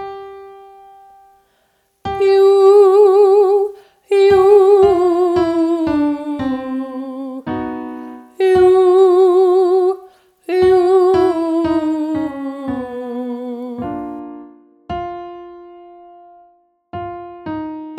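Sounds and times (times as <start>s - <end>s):
person singing a descending five-note scale as a vocal exercise: 2.2s - 7.5s, 8.4s - 14.0s.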